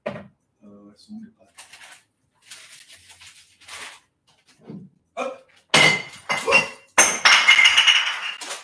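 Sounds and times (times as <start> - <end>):
speech: 1.0 - 1.7
glass bottle falling and clinking on floor: 5.8 - 8.6.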